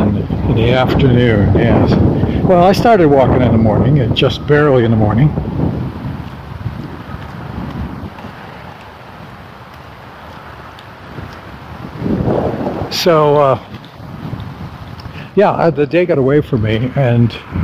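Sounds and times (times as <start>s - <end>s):
breezy wind blowing outdoors on a sunny day buffeting the microphone: 0.0s - 17.6s
speech: 0.6s - 5.6s, 13.0s - 13.8s, 15.4s - 17.6s.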